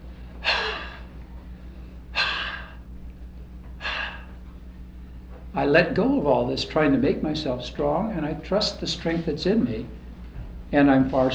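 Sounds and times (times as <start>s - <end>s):
deep full breaths taken and let out: 0.0s - 5.5s
steady low hum: 0.0s - 11.3s
speech: 5.5s - 10.0s, 10.7s - 11.3s.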